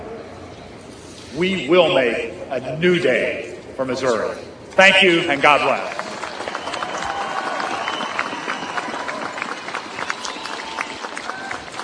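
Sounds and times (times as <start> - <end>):
speech: 1.3 - 6.0
large crowd clapping and cheering in an ovation: 5.6 - 11.8
whistles from a crowd: 6.4 - 11.1.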